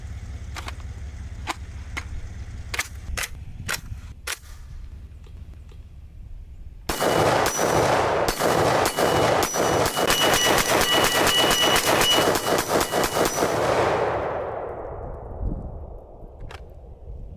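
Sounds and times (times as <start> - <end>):
Steyr AUG rifle: 1.5 - 4.8, 6.9 - 16.9.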